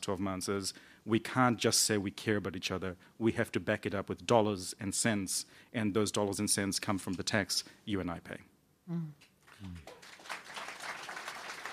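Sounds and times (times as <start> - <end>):
speech: 0.0 - 10.0
audience applauding: 9.5 - 11.7.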